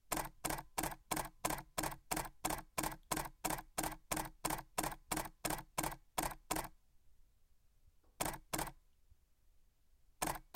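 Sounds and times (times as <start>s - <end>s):
Canon EOS 5Ds camera shutter slow burst: 0.1s - 6.7s, 8.2s - 8.8s, 10.2s - 10.5s.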